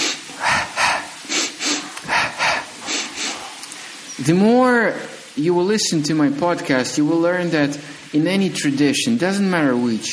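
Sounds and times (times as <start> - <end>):
short sharp breaths from a breathing exercise: 0.0 - 4.1
speech: 4.2 - 10.1.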